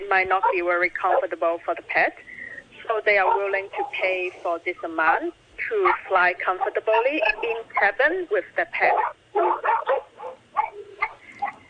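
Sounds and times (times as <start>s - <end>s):
speech: 0.1s - 2.3s, 2.9s - 9.7s
dog barking: 3.2s - 4.0s, 8.9s - 11.6s.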